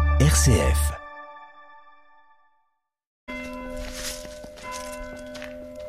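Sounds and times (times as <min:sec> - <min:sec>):
speech: 0:00.2 - 0:01.0
chapel bell ringing: 0:03.3 - 0:05.8.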